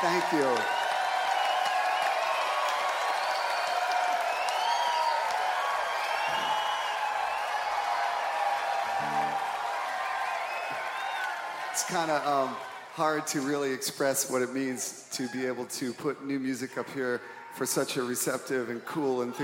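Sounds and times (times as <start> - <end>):
speech: 0.0 - 0.8, 11.9 - 19.4
group of performers clapping: 0.0 - 13.0
performers whooping and whistling: 0.6 - 7.8.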